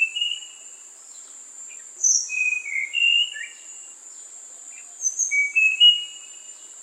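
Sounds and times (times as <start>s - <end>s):
Tanahjampea blue flycatcher calls in short clear whistled notes: 0.0s - 0.9s, 1.7s - 4.0s, 4.8s - 6.7s
steady high insect hiss: 0.0s - 6.8s.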